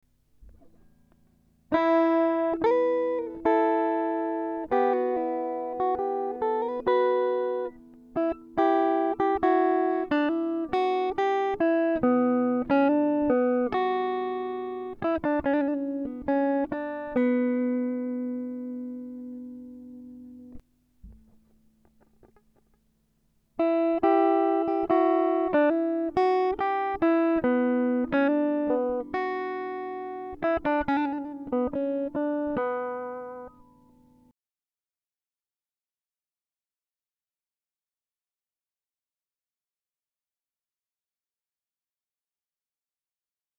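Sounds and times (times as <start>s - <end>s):
renaissance guitar improvisation in E minor: 0.4s - 22.8s, 23.6s - 34.3s.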